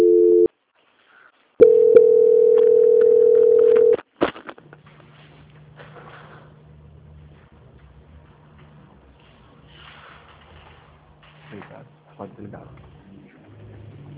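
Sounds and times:
telephone line tones during a bank call transfer: 0.0 - 0.5, 1.6 - 4.0.

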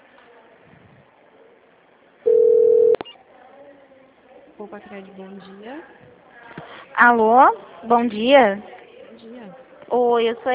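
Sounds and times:
steady single-pitch telephone line tone while transferring a call: 2.3 - 3.0
speech: 4.6 - 6.3, 7.0 - 8.7, 9.9 - 10.5.

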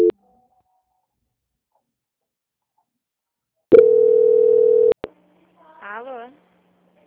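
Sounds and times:
telephone line tone during call transfer: 3.7 - 5.0.

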